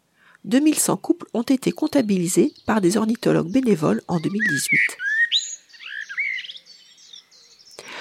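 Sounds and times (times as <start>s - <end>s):
speech: 0.4s - 5.1s
common blackbird singing fluting and warbling phrase: 1.2s - 7.9s.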